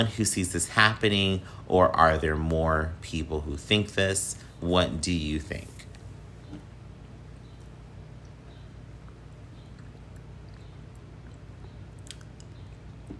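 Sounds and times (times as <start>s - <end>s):
speech: 0.0s - 5.7s
steady low hum: 0.0s - 13.1s
person drinking water with sips and gulps: 8.2s - 13.1s
small mouth clicks: 8.2s - 13.1s.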